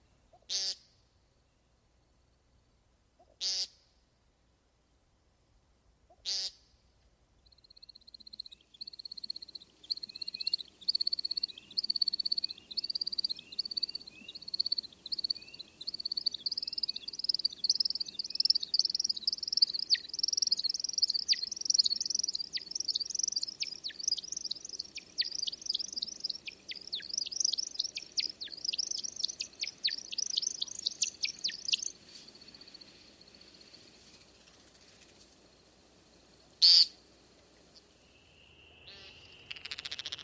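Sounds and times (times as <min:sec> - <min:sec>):
American Woodcock nasal buzzing calls: 0:00.3 - 0:00.9, 0:03.2 - 0:03.8, 0:06.1 - 0:06.7, 0:08.9 - 0:32.2, 0:36.6 - 0:37.0, 0:37.7 - 0:40.2
American Woodcock high rapid twittering and chirping: 0:07.8 - 0:35.1, 0:38.2 - 0:40.2.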